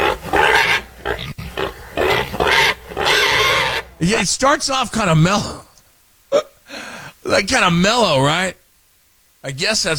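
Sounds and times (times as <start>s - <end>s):
pigs squealing and grunting while expecting food: 0.0s - 4.2s
speech: 4.0s - 5.6s, 6.3s - 6.5s, 7.3s - 8.6s, 9.4s - 9.9s.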